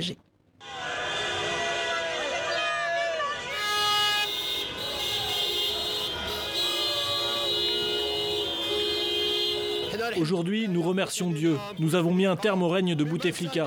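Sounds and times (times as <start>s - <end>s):
speech: 0.0s - 0.3s, 10.1s - 13.6s
car horns honking in celebration on a busy street in Algiers: 0.6s - 10.3s.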